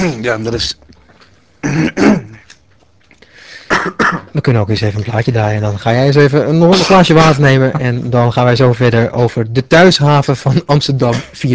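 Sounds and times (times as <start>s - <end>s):
speech: 0.0s - 0.9s, 1.6s - 2.4s, 3.8s - 11.5s
person clearing a hoarse throat on live radio: 1.6s - 2.5s, 3.7s - 4.4s, 11.1s - 11.4s.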